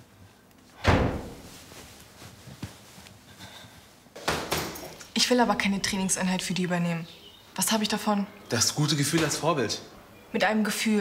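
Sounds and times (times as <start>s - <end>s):
door being shut hard: 0.8s - 1.4s
speech: 5.2s - 10.9s.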